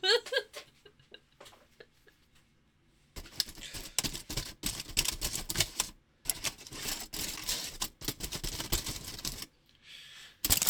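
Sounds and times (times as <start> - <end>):
aluminium foil crinkling and rustling as it is wrapped: 3.2 - 9.5, 10.4 - 10.6.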